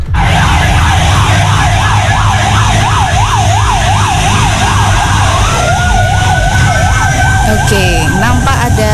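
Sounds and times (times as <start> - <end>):
fire truck and ambulance sirens wailing: 0.0 - 8.9
steady rumble of traffic and engines: 0.0 - 8.9.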